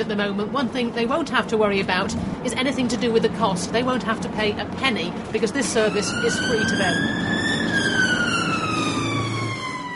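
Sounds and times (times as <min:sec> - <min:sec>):
speech: 0:00.0 - 0:08.0
low rumble of traffic: 0:00.0 - 0:09.9
ambulance siren wailing at an accident scene in Britain: 0:05.5 - 0:09.9.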